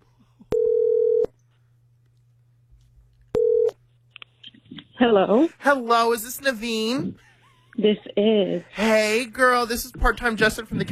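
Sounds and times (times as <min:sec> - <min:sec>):
quiet phone line hum: 0:00.0 - 0:10.9
phone line ringing with two steady electronic tones: 0:00.5 - 0:01.3, 0:03.4 - 0:03.8
speech: 0:05.0 - 0:10.9.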